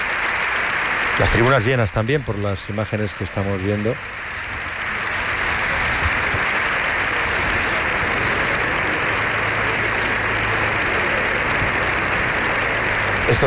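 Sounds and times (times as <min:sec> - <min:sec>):
large assembly applauding in a parliamentary chamber: 0:00.0 - 0:13.4
speech: 0:01.2 - 0:04.2.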